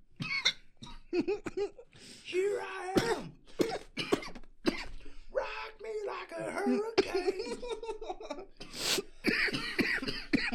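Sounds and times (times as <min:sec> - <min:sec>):
person coughing after a bong hit: 0:00.2 - 0:01.8, 0:03.0 - 0:05.0, 0:06.6 - 0:07.7, 0:08.6 - 0:10.5
speech: 0:01.1 - 0:03.9, 0:05.9 - 0:09.6
breathy giggling laughter: 0:07.1 - 0:08.6.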